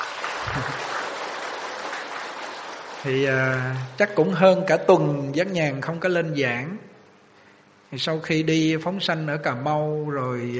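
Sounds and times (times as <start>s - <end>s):
applause from Buddhist followers in a temple main hall: 0.0s - 4.2s
speech: 3.0s - 6.9s, 7.9s - 10.5s.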